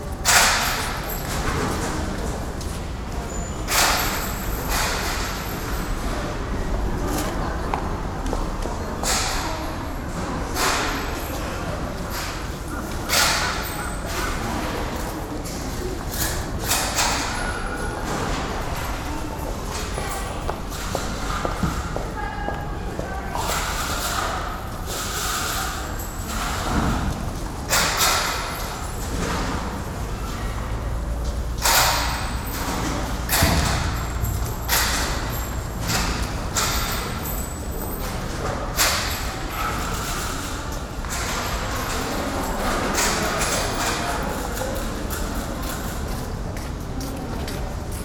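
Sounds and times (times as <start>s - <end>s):
urban train station entrance ambience: 0.0s - 48.0s.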